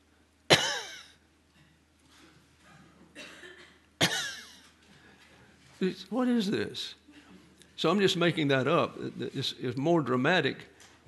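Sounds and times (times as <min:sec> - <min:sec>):
sharp dry coughs: 0:00.5 - 0:01.2, 0:02.7 - 0:04.6
speech: 0:05.8 - 0:07.0, 0:07.8 - 0:11.0.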